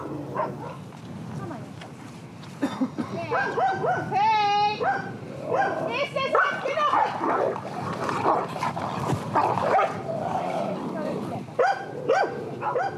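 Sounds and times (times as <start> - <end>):
two female dogs snarling on a pasture: 0.0 - 0.8, 4.8 - 12.9
two female dogs barking on a pasture: 0.0 - 0.9, 3.3 - 4.2, 4.8 - 10.5, 11.6 - 12.9
two female dogs yelping on a pasture: 3.3 - 4.2, 4.8 - 10.5, 11.6 - 12.9.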